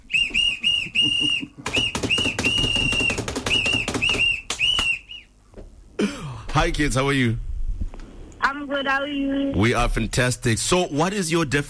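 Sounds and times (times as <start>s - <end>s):
shrill whistle blasts in a studio: 0.0s - 5.4s
speech: 6.6s - 7.5s, 8.7s - 11.6s.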